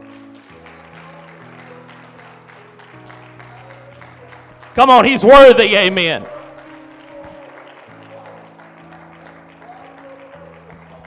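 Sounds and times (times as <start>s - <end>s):
audience clapping in praise: 0.0s - 11.0s
organ or keyboard chords: 3.0s - 9.6s
speech: 4.8s - 6.4s.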